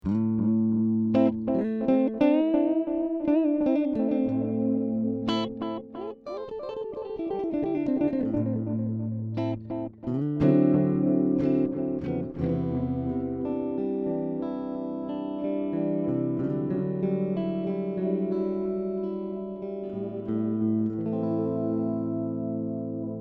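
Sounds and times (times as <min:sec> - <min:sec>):
guitar with delay effect: 0:00.0 - 0:23.1.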